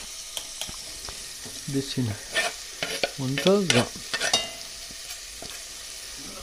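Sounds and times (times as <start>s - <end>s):
food sizzling as it is stirred in a hot pan: 0.0s - 6.4s
speech: 1.7s - 2.3s, 3.2s - 4.1s.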